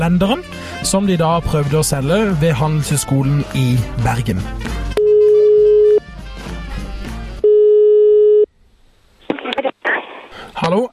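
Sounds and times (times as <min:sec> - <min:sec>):
speech: 0:00.0 - 0:04.8
music: 0:00.0 - 0:07.5
telephone ringback tone of an outgoing call from a radio program: 0:05.0 - 0:06.0, 0:07.4 - 0:08.5
short burst of crackly noise: 0:09.2 - 0:10.4.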